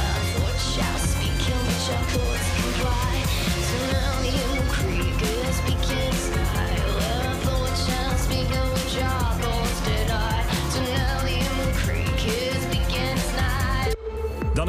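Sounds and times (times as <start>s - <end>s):
full band track of a new music single with driving beat: 0.0s - 14.0s.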